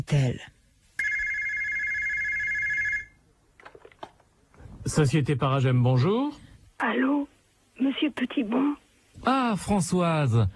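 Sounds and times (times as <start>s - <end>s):
speech: 0.0s - 0.6s, 4.8s - 10.5s
loud steady electronic phone ring: 1.0s - 3.2s
handling noises: 3.6s - 4.6s.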